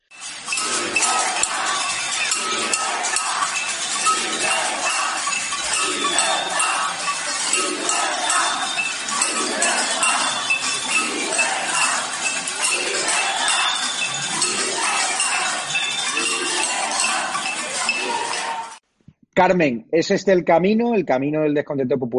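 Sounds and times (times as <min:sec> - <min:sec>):
street protest crowd banging pots and pans: 0:00.0 - 0:18.8
laughter: 0:00.4 - 0:18.8
speech: 0:19.4 - 0:22.1.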